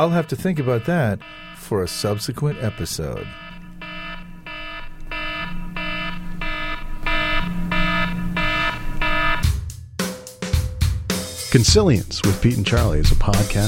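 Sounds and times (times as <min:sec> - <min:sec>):
speech: 0:00.0 - 0:03.4, 0:11.6 - 0:13.6
timer alarm beeping: 0:00.0 - 0:09.5.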